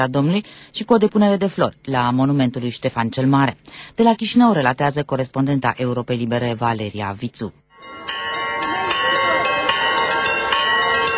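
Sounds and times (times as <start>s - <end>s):
speech: 0.0s - 8.0s
Orthodox church bells in Moldova pealing for independence anniversary: 7.8s - 11.1s.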